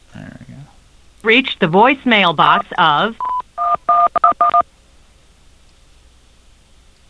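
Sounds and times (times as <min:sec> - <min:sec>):
speech: 0:01.2 - 0:03.3
telephone touch-tone dialing beeps: 0:03.2 - 0:04.6.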